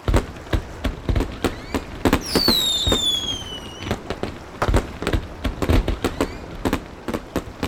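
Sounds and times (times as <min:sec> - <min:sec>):
fireworks crackling and popping: 0:00.0 - 0:07.6
whistling rockets streaking upward: 0:01.2 - 0:04.8, 0:05.6 - 0:06.8.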